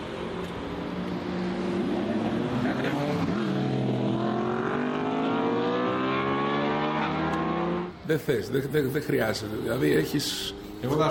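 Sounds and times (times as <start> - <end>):
sports car engine revving high: 0.2 - 8.0
speech: 8.1 - 11.0.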